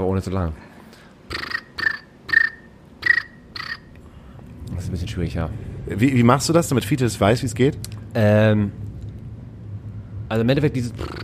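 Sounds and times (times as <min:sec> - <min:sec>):
speech: 0:00.1 - 0:01.4, 0:04.9 - 0:08.9, 0:10.3 - 0:11.2
person imitating cricket chirping with lips: 0:01.3 - 0:03.9, 0:11.0 - 0:11.2.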